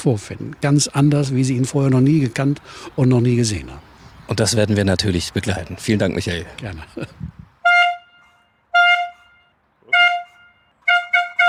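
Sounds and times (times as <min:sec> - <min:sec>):
speech: 0:00.0 - 0:07.4
toy horn honking as a start signal: 0:07.6 - 0:11.4.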